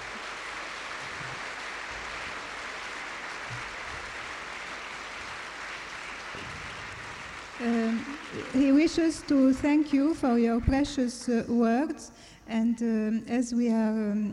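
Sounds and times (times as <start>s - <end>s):
audience applause at a talk: 0.0s - 10.2s
speech: 7.6s - 14.3s.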